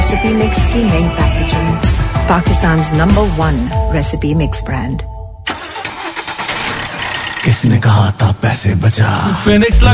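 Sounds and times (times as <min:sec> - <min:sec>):
speech: 0:00.1 - 0:05.1, 0:07.4 - 0:09.9
engine cranking, catching and running: 0:05.4 - 0:07.8.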